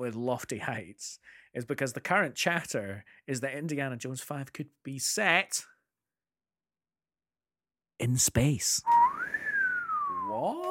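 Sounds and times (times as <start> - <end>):
speech: 0.0 - 5.7, 8.0 - 9.4, 10.3 - 10.6
single clear whistled tone: 8.8 - 10.6.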